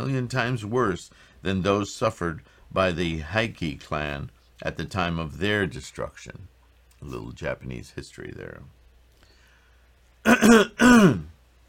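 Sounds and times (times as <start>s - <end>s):
speech: 0.0s - 8.8s, 10.2s - 11.3s
harsh voiced throat clearing: 10.3s - 11.4s.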